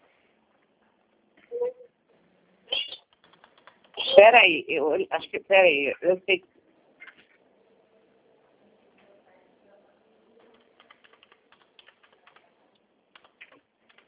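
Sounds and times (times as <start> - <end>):
low hum of noise: 0.0 - 14.0
person typing on a computer keyboard: 3.1 - 4.0, 10.4 - 12.5, 13.1 - 14.0
speech: 4.2 - 6.5.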